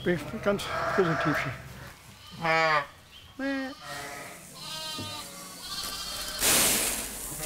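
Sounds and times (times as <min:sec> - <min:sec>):
speech: 0:00.0 - 0:01.7, 0:02.4 - 0:04.0
ewes and lambs bleating in a barn around lambing time: 0:00.1 - 0:06.6
rustling: 0:04.4 - 0:07.4.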